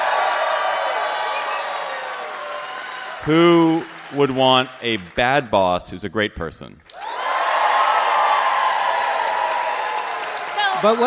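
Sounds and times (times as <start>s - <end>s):
audience cheering and whooping: 0.0s - 4.3s, 6.9s - 11.0s
audience clapping: 0.0s - 5.5s, 6.9s - 11.0s
speech: 3.2s - 6.9s, 10.8s - 11.0s.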